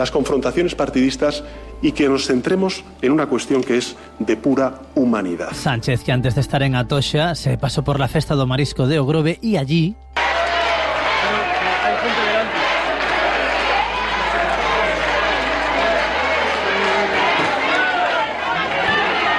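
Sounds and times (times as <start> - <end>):
speech: 0.0 - 10.1
dense loud crowd roaring: 10.2 - 19.3
people clapping: 10.2 - 19.3
people shouting: 10.2 - 19.3.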